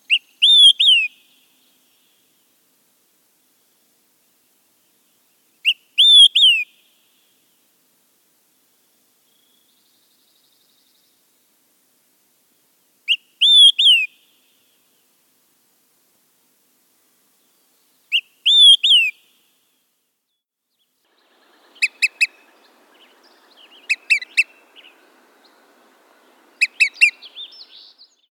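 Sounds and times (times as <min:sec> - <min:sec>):
Olive-sided flycatcher calling: 0:00.1 - 0:01.2, 0:05.6 - 0:06.7, 0:18.1 - 0:19.2, 0:21.1 - 0:28.3.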